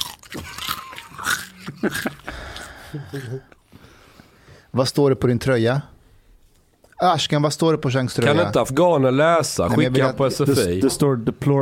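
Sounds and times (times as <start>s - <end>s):
crunchy chewing: 0.0s - 3.3s
speech: 0.3s - 0.6s, 1.8s - 2.1s, 2.9s - 3.6s, 4.7s - 6.0s, 7.0s - 11.6s.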